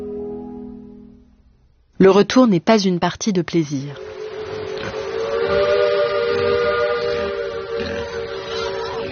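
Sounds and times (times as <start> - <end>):
speech: 2.0 - 4.1
steamship whistle blowing: 4.0 - 9.0.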